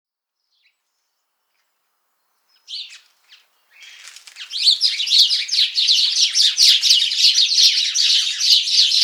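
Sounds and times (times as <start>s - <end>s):
house sparrow Passer domesticus chirping: 2.4s - 9.0s.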